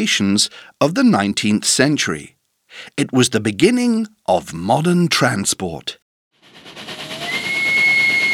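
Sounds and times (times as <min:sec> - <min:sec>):
speech: 0:00.0 - 0:06.0
steam train rumbling and hissing: 0:06.4 - 0:08.3.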